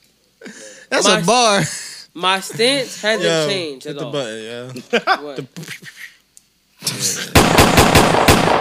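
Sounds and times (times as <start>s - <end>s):
speech: 0.4s - 6.1s, 6.9s - 8.5s
laughter: 2.5s - 6.2s
machine gun fire sound effect: 7.3s - 8.5s.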